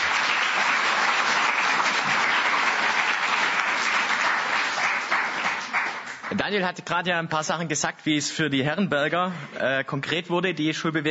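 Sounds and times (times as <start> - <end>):
audience applause: 0.0 - 6.6
speech: 6.4 - 11.1.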